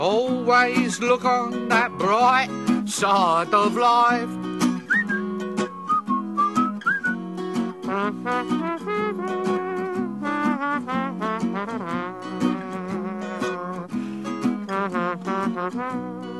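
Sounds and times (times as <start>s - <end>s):
speech: 0.0s - 4.5s
steady musical backing: 0.0s - 16.3s
person whistling a short bright melodic phrase: 4.8s - 7.2s.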